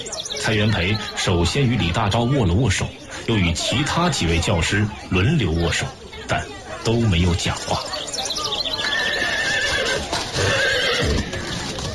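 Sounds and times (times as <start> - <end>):
speech: 0.0 - 8.0
horse-drawn carriage hooves and wheels clattering: 8.0 - 11.9
horse neighing: 8.8 - 11.9
horse snorting: 9.4 - 11.9.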